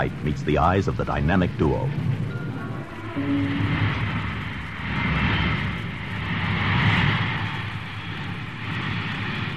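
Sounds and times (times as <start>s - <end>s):
speech: 0.0s - 2.2s, 3.2s - 4.1s
heavy propeller bomber engine roaring on an Army airfield runway: 0.0s - 9.5s.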